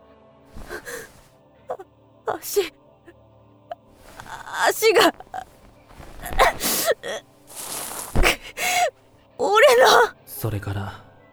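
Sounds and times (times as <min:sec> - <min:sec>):
faint breathing of another person in a wrecked airplane: 0:00.6 - 0:02.7, 0:04.0 - 0:10.1
short weak breath or whimper: 0:00.6 - 0:02.7, 0:04.0 - 0:10.1
speech: 0:01.8 - 0:02.8, 0:04.6 - 0:05.2, 0:07.0 - 0:07.3, 0:09.8 - 0:11.0.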